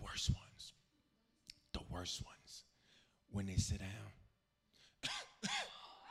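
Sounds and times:
speech: 0.1s - 0.4s, 2.0s - 2.6s, 3.3s - 4.2s
person imitating coughing and hacking: 5.0s - 5.8s.

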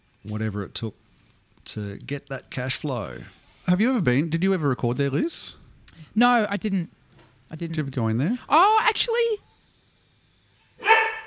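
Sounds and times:
speech: 0.2s - 1.0s, 1.6s - 9.5s
puppy barking: 10.8s - 11.2s.

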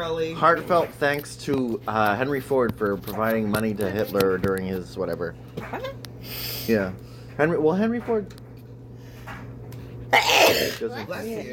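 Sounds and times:
speech: 0.0s - 8.4s, 10.1s - 11.5s
person sneezing: 10.1s - 10.8s.

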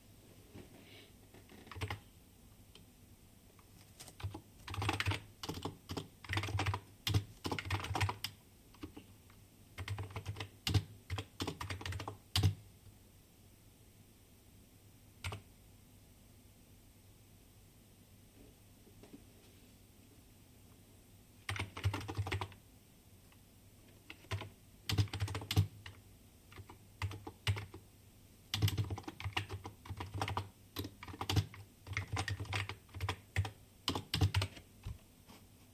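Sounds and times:
typing on a keyboard: 1.4s - 2.0s, 3.8s - 9.0s, 9.8s - 12.6s, 15.2s - 15.4s, 21.5s - 22.6s, 24.1s - 27.8s, 28.5s - 35.0s.

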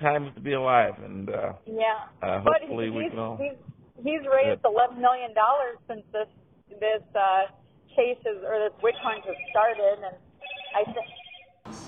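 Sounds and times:
speech: 0.0s - 11.8s
mobile phone ringing with an electronic ringtone: 8.8s - 11.6s.

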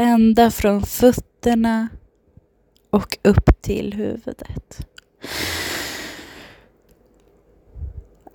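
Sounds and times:
speech: 0.0s - 2.0s, 2.9s - 5.6s
deep airy breath in: 5.2s - 6.7s.

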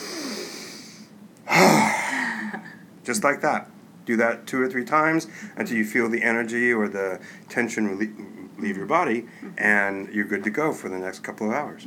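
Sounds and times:
deep breath taken at a desk: 0.0s - 2.6s, 5.3s - 5.6s
speech: 3.1s - 11.8s.

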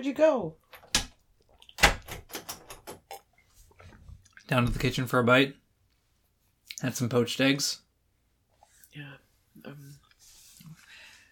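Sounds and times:
speech: 0.0s - 0.7s, 4.5s - 5.6s, 6.8s - 7.8s, 9.0s - 10.0s
door lock clicking and rattling as it is turned: 0.7s - 3.2s
door thumping shut: 1.8s - 2.9s.

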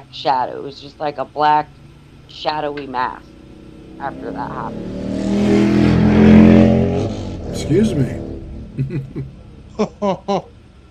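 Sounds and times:
speech: 0.0s - 3.4s, 4.0s - 5.6s, 7.6s - 8.2s, 8.8s - 10.5s
motorcycle engine roaring past: 2.3s - 9.4s
laughter: 7.6s - 8.1s, 8.8s - 10.4s.

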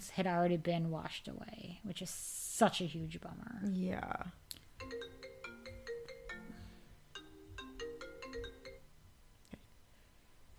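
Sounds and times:
speech: 0.2s - 5.2s
phone ringtone chiming: 4.8s - 8.9s.

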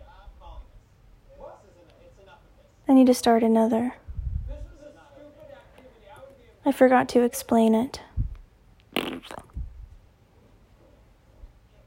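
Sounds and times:
speech: 2.9s - 4.0s, 6.7s - 8.1s
loud sputtering fart: 8.9s - 9.6s.

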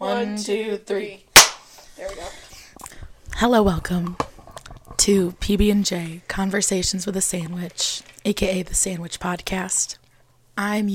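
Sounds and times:
speech: 0.0s - 1.2s, 3.4s - 4.2s, 5.0s - 10.0s, 10.6s - 10.9s
single sharp loud hand clap: 1.4s - 1.7s.

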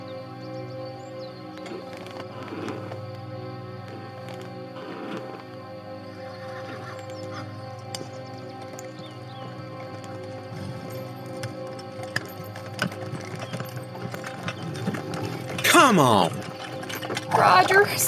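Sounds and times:
horses pulling a wagon, hooves clip-clopping: 3.8s - 15.7s, 16.3s - 18.0s
wagon pulled by horses rattling: 10.7s - 18.0s
speech: 15.9s - 16.3s, 17.4s - 18.0s.

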